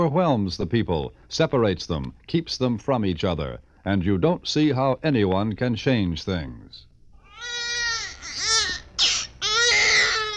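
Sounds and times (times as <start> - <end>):
speech: 0.0 - 6.9
baby crying in a wide valley: 7.2 - 10.3.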